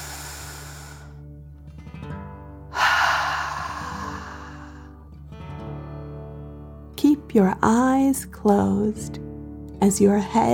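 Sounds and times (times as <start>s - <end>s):
slow deep breath in and out during guided relaxation: 0.0s - 1.3s, 2.7s - 5.0s
speech: 7.0s - 9.2s, 9.8s - 10.5s.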